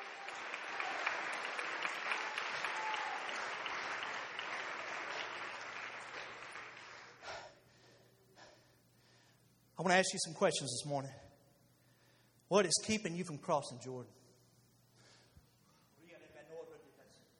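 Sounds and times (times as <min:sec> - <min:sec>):
large group clapping hands: 0:00.0 - 0:07.3
speech: 0:09.8 - 0:11.3, 0:12.5 - 0:14.2.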